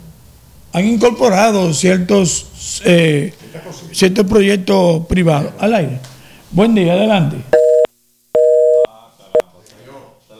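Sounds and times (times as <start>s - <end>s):
speech: 0.7s - 7.6s
telephone tones after a dropped call: 7.5s - 9.4s.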